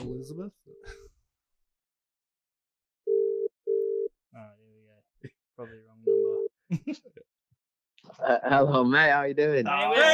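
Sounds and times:
speech: 0.2 - 1.0, 4.4 - 7.2, 8.1 - 10.1
telephone line tone beeping while dialing a call: 3.1 - 4.1.

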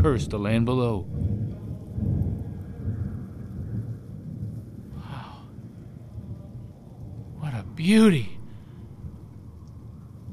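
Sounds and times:
speech: 0.0 - 1.4, 7.8 - 8.4
deep rolling thunder: 0.0 - 10.3
steady rain: 0.0 - 10.3.

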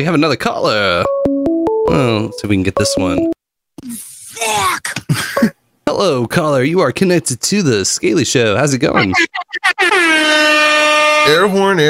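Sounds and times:
speech: 0.0 - 1.2, 1.9 - 11.8
loud air horn blast: 10.2 - 11.5.

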